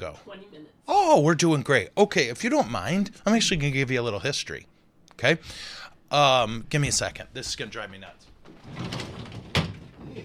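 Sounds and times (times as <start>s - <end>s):
speech: 0.0s - 9.1s
partly open door being shut: 8.4s - 10.2s.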